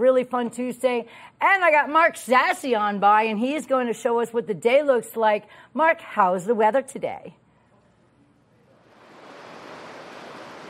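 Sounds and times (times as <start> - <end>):
speech: 0.0 - 7.4
creek water flowing steadily on a sunny morning: 9.1 - 10.6.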